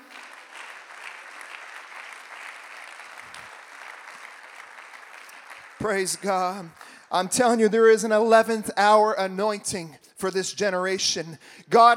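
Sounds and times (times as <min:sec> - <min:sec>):
congregation clapping: 0:00.0 - 0:08.3
speech: 0:05.8 - 0:11.9.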